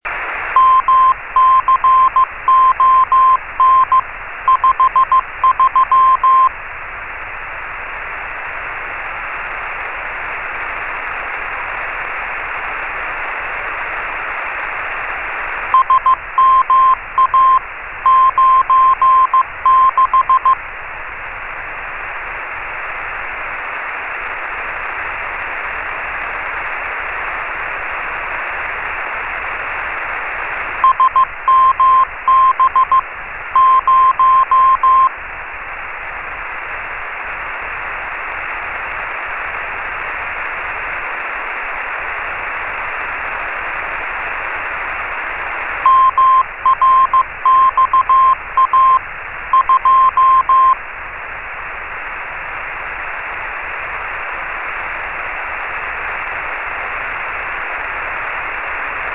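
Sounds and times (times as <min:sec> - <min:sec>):
CW beacon: 0:00.6 - 0:06.5, 0:15.8 - 0:20.6, 0:30.8 - 0:33.0, 0:33.6 - 0:35.1, 0:45.8 - 0:50.8.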